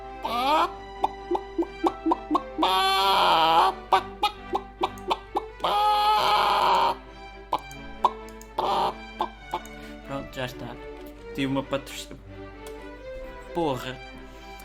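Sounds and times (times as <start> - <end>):
chicken squawking: 0.2 - 7.0, 8.0 - 9.3
chicken clucking: 0.2 - 9.7
speech: 11.4 - 12.3, 13.6 - 14.1.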